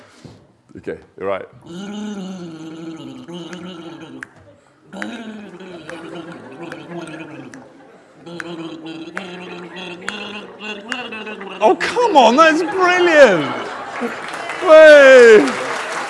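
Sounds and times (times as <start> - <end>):
speech: 0.8 - 4.2, 8.2 - 15.6
person gargling a mouthful of drink: 1.6 - 12.5
laughter: 1.8 - 16.0.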